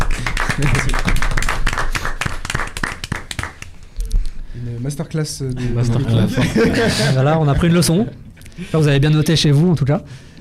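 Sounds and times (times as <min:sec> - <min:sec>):
small group clapping hands in applause: 0:00.0 - 0:03.8
laughter: 0:00.5 - 0:01.4, 0:05.8 - 0:07.6
speech: 0:00.6 - 0:01.2, 0:04.6 - 0:10.3.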